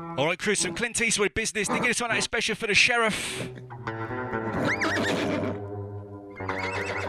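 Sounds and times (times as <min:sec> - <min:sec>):
speech: 0:00.1 - 0:03.7
horse neighing: 0:01.7 - 0:02.2, 0:04.5 - 0:05.6, 0:06.4 - 0:07.0
horse snort-like call: 0:01.7 - 0:02.2, 0:03.3 - 0:03.7, 0:04.5 - 0:05.6.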